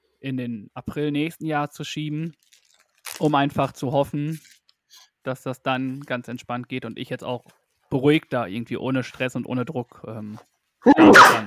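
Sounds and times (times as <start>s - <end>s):
speech: 0.2s - 2.6s, 3.2s - 4.5s, 5.2s - 11.4s
sneeze: 10.9s - 11.4s.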